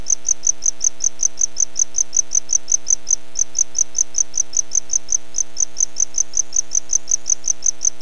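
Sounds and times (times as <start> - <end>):
tropical house cricket Gryllodes sigillatus chirping: 0.0 - 8.0.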